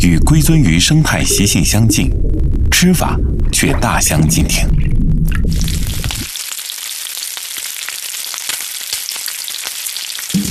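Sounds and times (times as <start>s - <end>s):
speech: 0.0s - 4.8s
low rumble: 0.0s - 6.3s
fish frying in hot lard: 5.4s - 10.4s.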